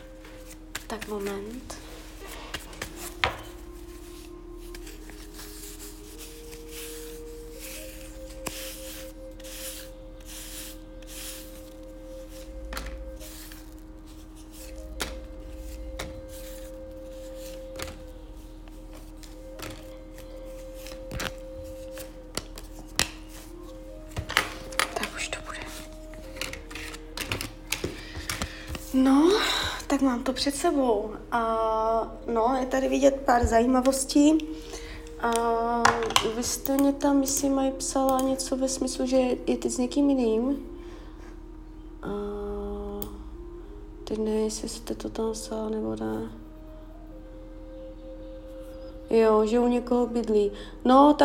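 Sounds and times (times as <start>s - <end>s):
soft steady music: 0.0s - 51.2s
tarot cards being shuffled with papery snaps and riffles: 0.2s - 29.0s
speech: 0.9s - 1.8s, 30.0s - 40.7s, 44.5s - 46.4s, 49.1s - 51.2s.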